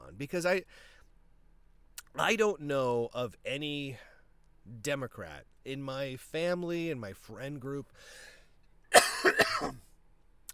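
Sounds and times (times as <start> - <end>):
speech: 0.2 - 1.0, 2.2 - 4.1, 4.7 - 8.3, 8.9 - 9.8
person coughing: 8.9 - 9.8
throat clearing: 9.0 - 9.8.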